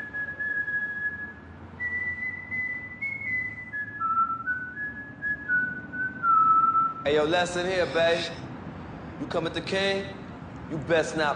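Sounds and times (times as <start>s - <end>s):
whistled melody played before a game in Baltimore: 0.0s - 7.1s
steady low hum: 0.0s - 11.3s
speech: 7.0s - 8.4s, 9.2s - 11.3s.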